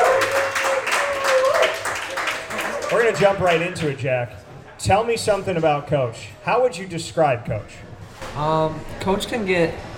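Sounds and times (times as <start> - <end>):
crowd applauding to welcome a guest: 0.0 - 4.0
speech: 2.9 - 9.9.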